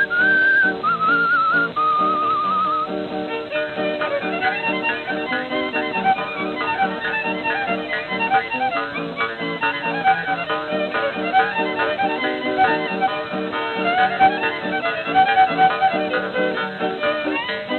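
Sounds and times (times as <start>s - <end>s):
person whistling a bright lilting melody: 0.0s - 3.0s
lively band accompaniment: 0.0s - 17.7s.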